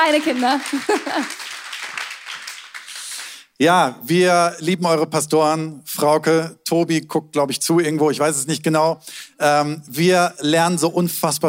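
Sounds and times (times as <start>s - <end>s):
audience in a church applauding: 0.0s - 3.6s
speech: 0.1s - 1.5s, 3.6s - 11.4s
laughter: 0.7s - 1.4s.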